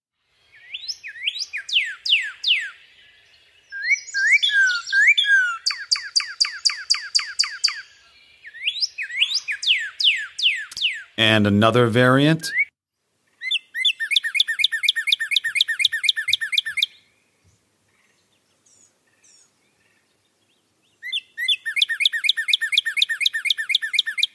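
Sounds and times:
northern cardinal singing rapid slurred whistles: 0.6 - 2.8, 3.8 - 11.1, 13.4 - 17.0, 21.0 - 24.3
speech: 11.2 - 12.6.

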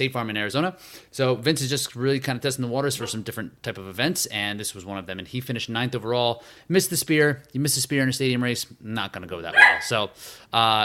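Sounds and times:
speech: 0.0 - 10.8
dog barking sharply: 9.5 - 10.0.

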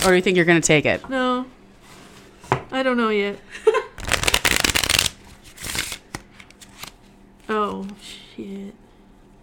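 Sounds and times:
speech: 0.0 - 1.5, 2.7 - 3.8, 7.5 - 8.8
deck of playing cards being shuffled with crisp riffling: 4.0 - 7.0.

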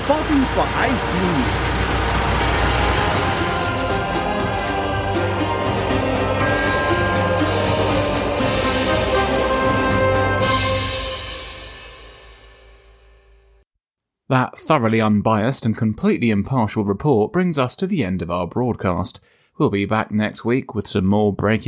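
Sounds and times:
truck full of reservists engine running: 0.0 - 11.0
speech: 0.1 - 1.7, 14.3 - 21.6.

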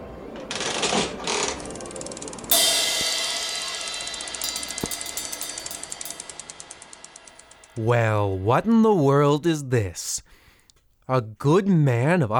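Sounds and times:
coin-operated slot machine whirring and ratcheting: 0.5 - 7.8
rapid steady clicking of a slot machine: 0.6 - 7.8
loud metallic clatter of a slot machine: 1.6 - 7.8
speech: 7.8 - 10.3, 11.1 - 12.3.

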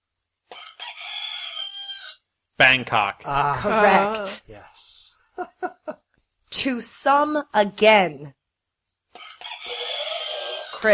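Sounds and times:
rooster crowing: 0.5 - 2.2, 9.2 - 10.8
speech: 2.6 - 6.0, 6.6 - 8.4
laughter: 5.4 - 6.0.

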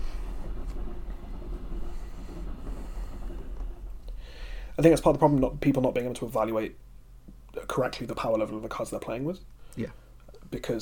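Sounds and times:
train passing by outside: 0.0 - 6.9
speech: 4.8 - 6.9, 7.6 - 10.8.

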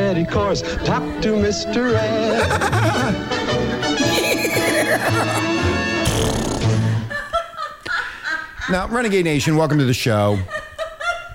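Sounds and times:
speech: 0.2 - 6.4, 8.7 - 10.6
busy musical backing: 0.9 - 7.1
laughter: 2.2 - 3.2, 4.0 - 5.6, 7.1 - 11.3
horse whinnying: 4.0 - 5.4.

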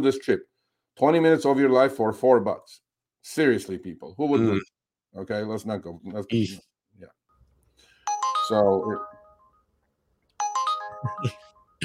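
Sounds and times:
speech: 0.0 - 7.2, 8.5 - 9.1, 11.0 - 11.8
rideshare app ride request alert chime on a phone: 8.1 - 9.7, 10.4 - 11.8.

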